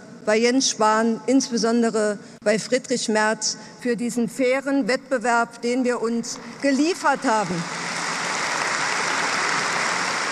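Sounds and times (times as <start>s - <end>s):
speech: 0.2s - 7.8s
large crowd applause after a candidate accepts her election: 7.6s - 10.3s.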